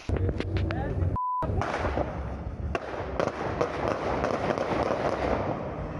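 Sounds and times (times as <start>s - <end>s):
indistinct voices: 0.0s - 2.5s
rumbling street noise: 0.0s - 5.9s
brief electronic beep: 1.1s - 1.5s
gunshots fired outdoors at a police checkpoint in Brasília, Brazil: 1.5s - 5.9s.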